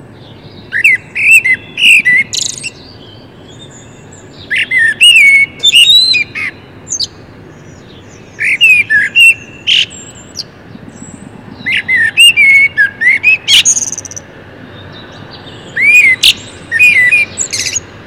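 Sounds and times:
common blackbird singing mellow fluted whistles and squeaky twitters: 0.6 - 7.1, 8.3 - 10.5, 11.6 - 14.2, 15.6 - 17.8.

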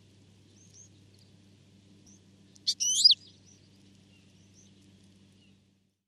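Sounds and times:
European goldfinch Carduelis carduelis twittering: 2.7 - 3.1
European goldfinch Carduelis carduelis sharp bright call: 2.7 - 3.2.

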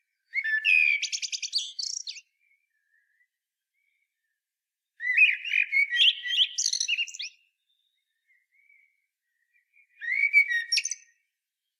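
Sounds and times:
common blackbird singing a flutey warbling phrase: 0.3 - 3.1, 5.0 - 8.9, 9.8 - 11.2.

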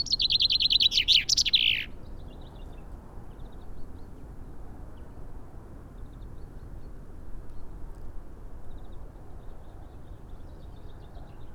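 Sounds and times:
common chaffinch Fringilla coelebs song: 0.0 - 2.0.

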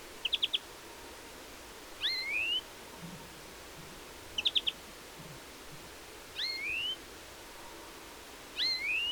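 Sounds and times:
European greenfinch calls: 0.2 - 0.6, 2.0 - 2.6, 4.4 - 4.8, 6.4 - 7.0, 8.6 - 9.0.

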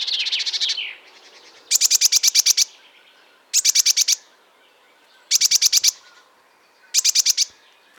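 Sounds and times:
Eurasian blue tit Cyanistes caeruleus chatter: 0.0 - 2.8, 3.5 - 4.2, 5.1 - 7.5
Eurasian blue tit Cyanistes caeruleus churring calls: 0.0 - 2.8, 3.5 - 4.2, 5.3 - 6.2, 6.8 - 7.5.

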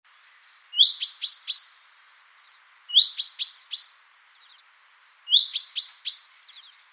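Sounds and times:
common chaffinch Fringilla coelebs high-pitched chip calls: 0.7 - 1.8, 2.9 - 4.6, 5.3 - 6.8.

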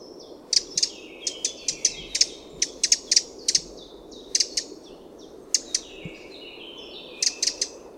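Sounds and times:
Eurasian wren Troglodytes troglodytes calling with ticks: 0.2 - 7.9.

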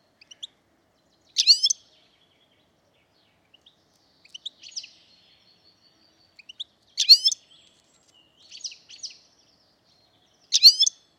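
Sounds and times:
European goldfinch Carduelis carduelis calling: 0.2 - 11.1.

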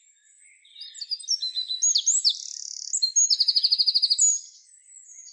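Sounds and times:
Eurasian wren Troglodytes troglodytes singing: 0.8 - 4.6.

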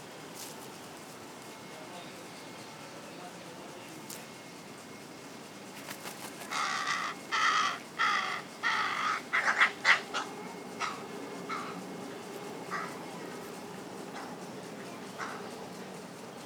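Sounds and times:
carrion crow Corvus corone cawing: 6.4 - 11.9, 12.6 - 13.0, 15.2 - 15.6.

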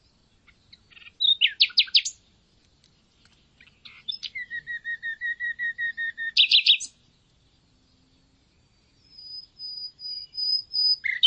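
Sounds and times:
common nightingale Luscinia megarhynchos singing: 0.0 - 11.2.

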